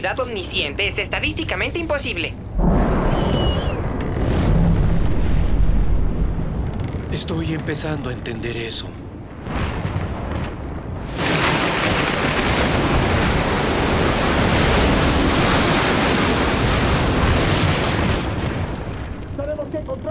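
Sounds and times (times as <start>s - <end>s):
speech: 0.0s - 2.4s, 7.1s - 9.0s
stormy sea with crashing waves around a ship: 2.6s - 7.0s, 9.3s - 19.6s.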